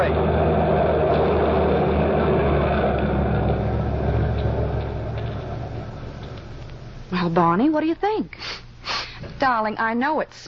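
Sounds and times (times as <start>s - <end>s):
heavy truck engine rumbling while maneuvering: 0.0s - 7.9s
speech: 7.3s - 10.4s.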